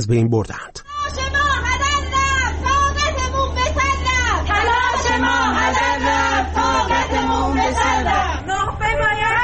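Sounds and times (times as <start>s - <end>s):
steady low hum: 0.0s - 9.4s
crowd of protesters chanting in Tabriz: 4.2s - 8.5s.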